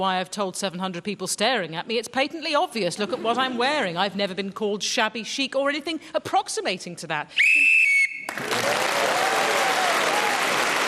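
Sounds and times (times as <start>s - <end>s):
speech: 0.0s - 7.8s, 8.4s - 9.2s
referee's whistle blast ending a round: 7.4s - 8.3s
audience applause: 8.3s - 10.8s.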